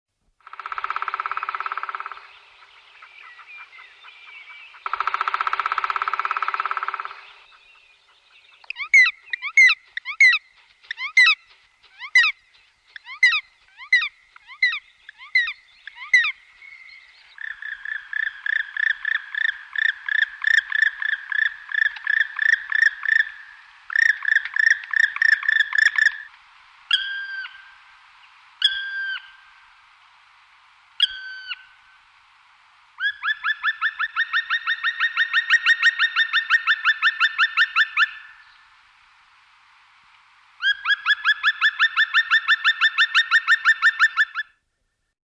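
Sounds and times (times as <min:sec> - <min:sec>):
black woodpecker: 0:00.4 - 0:26.3, 0:33.0 - 0:38.3, 0:40.6 - 0:44.5.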